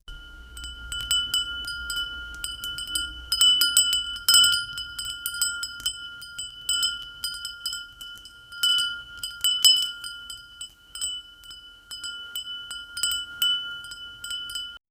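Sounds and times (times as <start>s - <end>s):
soft bells: 0.0s - 14.8s.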